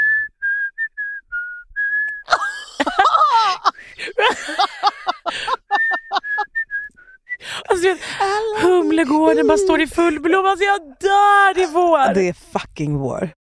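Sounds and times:
person whistling a tune: 0.0s - 2.3s, 5.6s - 7.5s
laughter: 2.3s - 6.5s, 7.5s - 10.2s
speech: 9.0s - 13.4s.

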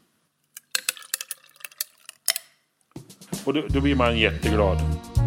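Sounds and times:
cold ice cubes cracking and popping: 0.5s - 2.5s
speech: 3.4s - 5.1s.

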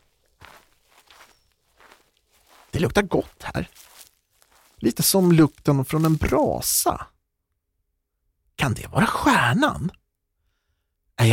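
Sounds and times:
footsteps stepping in through an open door: 0.0s - 6.8s
speech: 2.7s - 3.9s, 4.8s - 7.1s, 8.6s - 10.0s.

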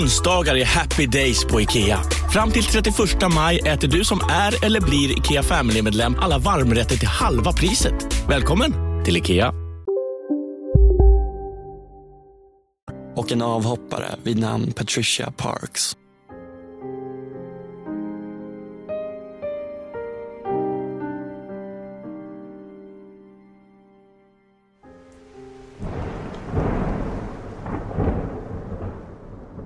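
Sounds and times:
speech: 0.0s - 9.6s, 13.2s - 16.0s
melodic music: 0.0s - 14.8s, 16.0s - 26.6s
heavy rain: 25.2s - 29.6s
deep rumbling thunder: 25.8s - 29.6s.

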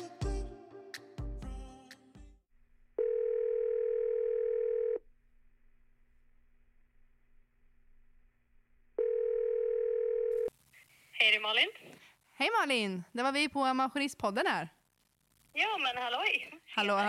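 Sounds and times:
telephone ringback tone while calling: 3.0s - 5.0s, 9.0s - 10.5s
speech: 11.2s - 14.8s, 15.6s - 17.0s.

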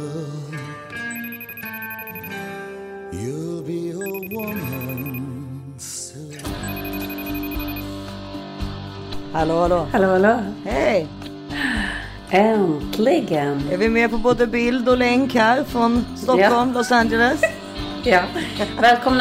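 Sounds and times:
melodic electronic phone ringtone: 1.1s - 2.5s, 4.0s - 5.3s, 6.6s - 7.9s
speech: 9.3s - 11.2s, 12.3s - 19.1s.

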